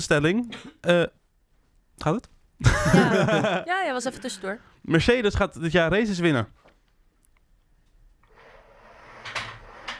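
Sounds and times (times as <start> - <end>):
speech: 0.0 - 1.2, 2.0 - 6.6
laughter: 2.6 - 3.7
chair scraping across the floor: 8.2 - 9.9.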